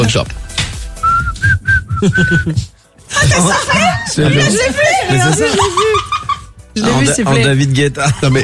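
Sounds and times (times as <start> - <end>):
speech: 0.1 - 0.4, 2.0 - 6.2, 6.8 - 8.4
person whistling a tune: 1.0 - 2.7
laughter: 1.9 - 7.1, 7.9 - 8.4.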